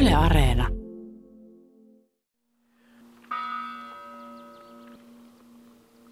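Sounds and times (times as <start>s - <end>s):
speech: 0.2s - 0.8s
chapel bells tolling at Monna cemetery in Rauma: 3.3s - 5.0s.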